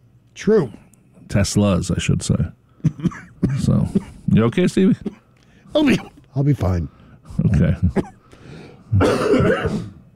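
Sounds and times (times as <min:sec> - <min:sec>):
speech: 0:00.4 - 0:08.1
harsh throaty cough: 0:02.8 - 0:04.2, 0:05.0 - 0:06.2, 0:07.7 - 0:08.2, 0:08.9 - 0:10.0.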